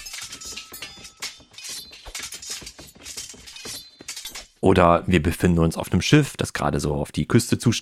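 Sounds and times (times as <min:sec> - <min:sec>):
swords clashing and clinking in a melee: 0:00.0 - 0:04.6
speech: 0:04.6 - 0:07.8.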